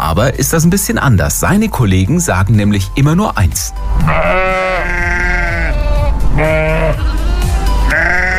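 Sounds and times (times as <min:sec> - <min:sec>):
speech: 0:00.1 - 0:05.1
sheep bleating: 0:04.0 - 0:08.3.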